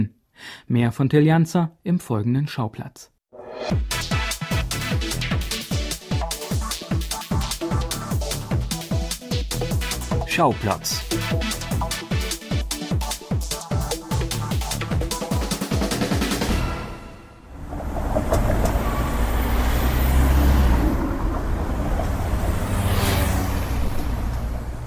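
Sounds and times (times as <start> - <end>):
speech: 0.0 - 4.2, 10.4 - 11.5
rhythmic music: 3.6 - 16.8
cars whooshing past on a busy road: 16.8 - 24.8
louder vehicle passing: 17.4 - 24.8.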